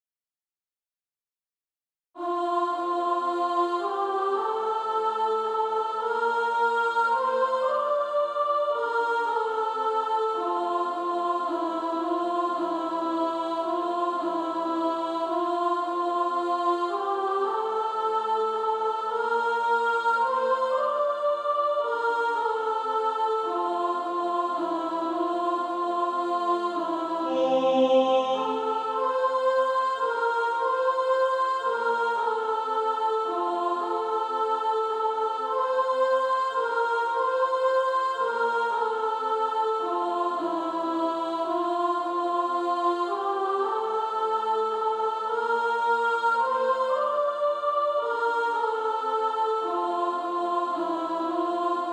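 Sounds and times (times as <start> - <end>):
female soprano choir singing: 2.2 - 51.9.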